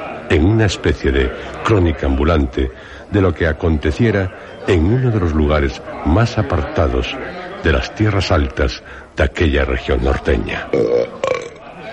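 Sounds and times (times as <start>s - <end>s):
speech: 0.6s - 11.4s
man burping loudly after eating beans in a tavern: 10.6s - 11.8s.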